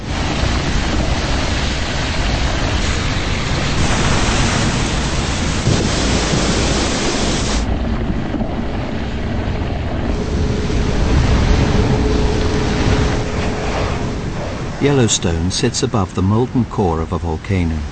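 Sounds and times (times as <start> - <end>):
geyser in Yellowstone erupting, superheated water gushing into air: 0.0 - 16.2
speech: 14.8 - 17.9.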